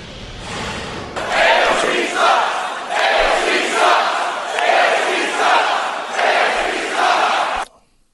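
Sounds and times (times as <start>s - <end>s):
large crowd at a campaign-style rally chanting initials in unison: 1.2s - 7.7s.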